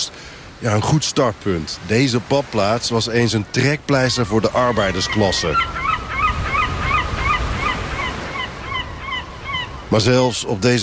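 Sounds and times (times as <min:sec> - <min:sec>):
low rumble of wind and surf: 0:00.0 - 0:10.8
speech: 0:00.6 - 0:05.8, 0:09.9 - 0:10.8
gulls screeching at a seaside resort: 0:03.8 - 0:10.8.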